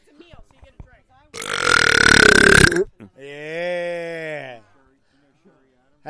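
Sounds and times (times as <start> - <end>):
long loud rattling burp: 1.4 - 2.9.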